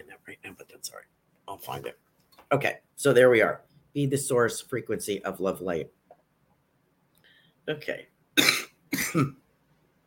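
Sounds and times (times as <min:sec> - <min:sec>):
speech: 0:00.9 - 0:06.0, 0:07.7 - 0:09.4
person clearing throat: 0:08.4 - 0:09.4
person coughing: 0:08.4 - 0:09.4.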